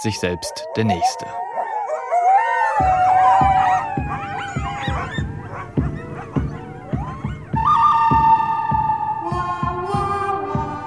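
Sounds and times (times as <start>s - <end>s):
speech: 0.0s - 1.5s, 2.8s - 3.1s
Italo-Western film music with wailing sliding tones imitating a coyote howl: 0.0s - 10.8s.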